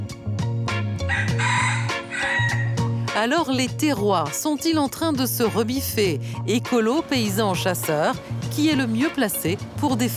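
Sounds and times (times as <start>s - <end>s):
rhythmic music with deep pulsing bassline: 0.0s - 10.1s
rooster crowing: 1.1s - 2.8s
speech: 3.2s - 10.1s.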